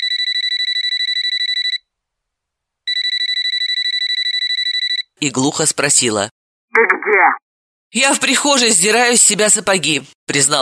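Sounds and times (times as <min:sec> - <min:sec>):
electronic telephone ringing: 0:00.0 - 0:01.8, 0:02.9 - 0:05.1
speech: 0:05.2 - 0:10.6.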